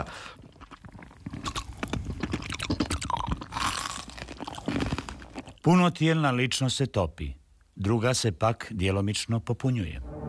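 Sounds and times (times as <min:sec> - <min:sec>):
crunching and chewing on sweet ice cubes: 0:00.0 - 0:05.7
speech: 0:05.6 - 0:10.1.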